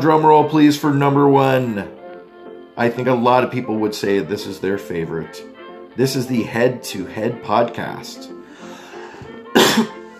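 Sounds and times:
speech: 0:00.0 - 0:02.0, 0:02.8 - 0:08.4, 0:09.8 - 0:10.0
cough: 0:09.5 - 0:10.0.

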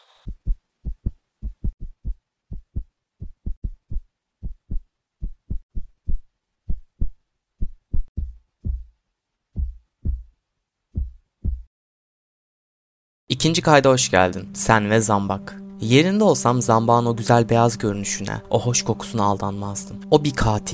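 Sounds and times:
heartbeat: 0:00.2 - 0:09.0, 0:09.6 - 0:11.7
speech: 0:13.4 - 0:20.7.

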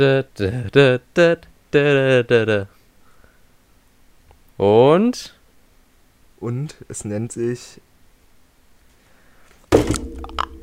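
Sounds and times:
speech: 0:00.0 - 0:02.8, 0:04.6 - 0:05.4, 0:06.4 - 0:07.9
smartphone dropping onto a hard floor: 0:09.7 - 0:10.6
smartphone rattling and knocking as it settles: 0:09.7 - 0:10.6.

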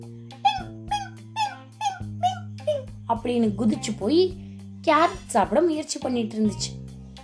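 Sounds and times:
puppy giving high-pitched yelping barks with a whimpering tone: 0:00.5 - 0:02.9
speech: 0:03.1 - 0:06.8.

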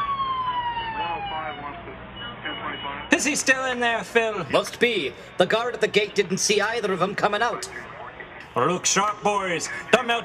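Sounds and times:
faint traffic rumble: 0:00.0 - 0:10.2
police squad car sirens wailing: 0:00.0 - 0:10.2
speech: 0:03.1 - 0:07.9, 0:08.6 - 0:10.2.

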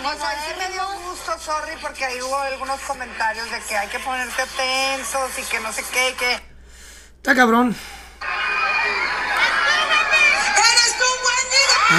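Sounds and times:
speech: 0:00.0 - 0:06.5, 0:07.2 - 0:08.0
laughter: 0:08.2 - 0:11.2
crowd cheering and shouting in the street: 0:08.2 - 0:11.9.

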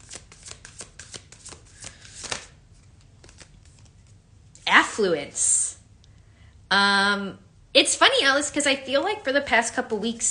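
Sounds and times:
deck of cards shuffled before drawing a card: 0:00.0 - 0:04.6
speech: 0:05.0 - 0:05.5, 0:06.7 - 0:10.2.

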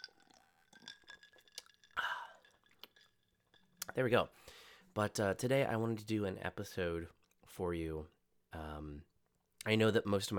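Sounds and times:
person sipping a drink from a glass: 0:00.0 - 0:03.9
speech: 0:04.0 - 0:10.3.

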